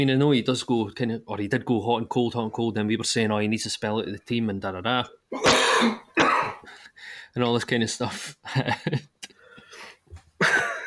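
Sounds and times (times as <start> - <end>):
speech: 0.0 - 6.1, 7.0 - 9.3
harsh raspy coughing: 5.3 - 6.7
throat clearing: 5.4 - 6.6.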